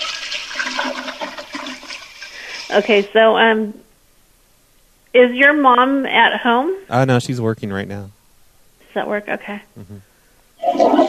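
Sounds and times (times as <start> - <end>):
toilet flushing and overflowing: 0.0 - 3.0, 10.6 - 11.0
speech: 2.7 - 3.9, 5.2 - 8.2, 9.0 - 10.1.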